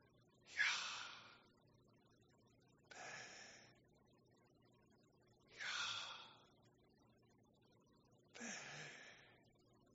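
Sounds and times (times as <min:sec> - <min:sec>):
voice breathing slowly in imitation of a name: 0:00.5 - 0:01.5, 0:02.9 - 0:03.8, 0:05.5 - 0:06.5, 0:08.4 - 0:09.5.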